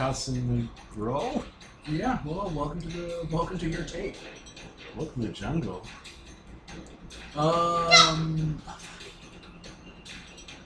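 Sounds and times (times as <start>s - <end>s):
speech: 0.0s - 6.2s, 6.8s - 9.0s
wolf whining: 7.7s - 8.4s.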